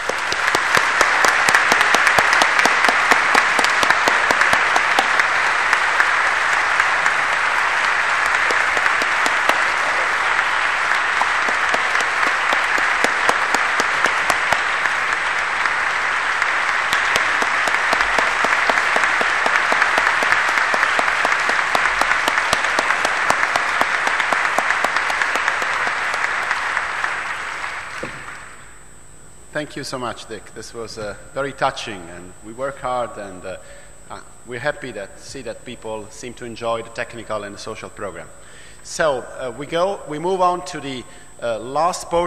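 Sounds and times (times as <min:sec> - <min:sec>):
large conference audience applauding: 0:00.0 - 0:28.7
speech: 0:29.6 - 0:42.2.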